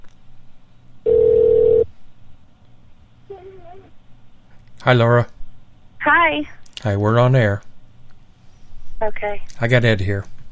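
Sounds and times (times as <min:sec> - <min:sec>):
telephone line ringing before caller connects: 0:01.1 - 0:01.8
speech: 0:04.8 - 0:05.3, 0:06.3 - 0:07.7, 0:09.0 - 0:10.4.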